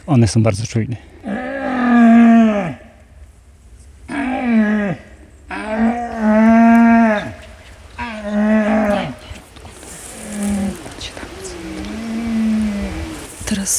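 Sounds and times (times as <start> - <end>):
speech: 0.0 - 1.4
red deer stag roaring during the rut: 1.2 - 3.2, 4.0 - 13.4.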